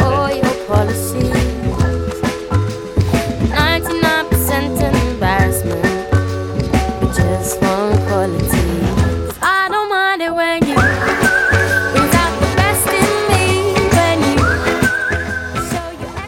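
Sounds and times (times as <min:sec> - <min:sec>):
pop backing of drums, bass and keys: 0:00.0 - 0:16.2
bright whistled melody in a pop song: 0:10.7 - 0:16.2.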